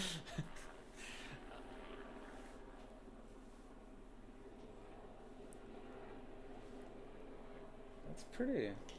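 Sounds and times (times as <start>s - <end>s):
helicopter engine and rotor droning overhead: 0.0s - 8.9s
speech: 8.4s - 8.9s.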